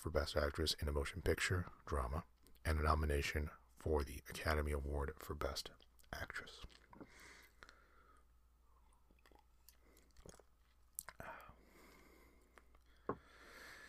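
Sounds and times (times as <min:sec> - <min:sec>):
speech: 0:00.0 - 0:07.4
person sipping hot tea: 0:06.6 - 0:13.4.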